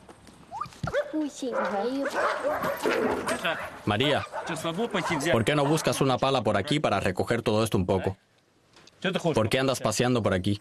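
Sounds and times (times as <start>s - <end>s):
dogs barking: 0.8s - 6.2s
speech: 0.8s - 8.3s, 9.0s - 10.6s.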